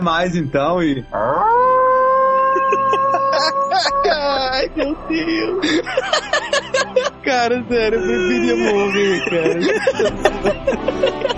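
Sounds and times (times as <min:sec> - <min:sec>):
speech: 0:00.0 - 0:01.7, 0:02.7 - 0:11.2
person voicing a howl-like roar with the mouth: 0:01.2 - 0:05.7
laughter: 0:02.4 - 0:11.3.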